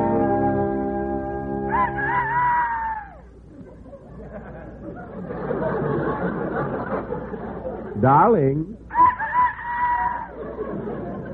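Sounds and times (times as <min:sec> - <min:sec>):
soft noise: 0:00.0 - 0:11.3
rooster crowing on a farm in the early morning: 0:01.6 - 0:03.3, 0:08.9 - 0:10.4
laughter: 0:01.7 - 0:08.0, 0:09.0 - 0:11.3
speech: 0:08.0 - 0:08.8.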